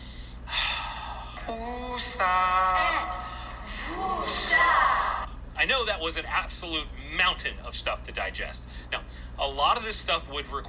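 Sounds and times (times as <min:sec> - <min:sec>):
person taking deep breaths with gasping inhales: 0:00.0 - 0:01.5, 0:03.2 - 0:04.0
voiced wavering sighs on the exhale: 0:00.0 - 0:02.0, 0:02.9 - 0:05.3
speech: 0:01.5 - 0:03.1, 0:05.6 - 0:10.6.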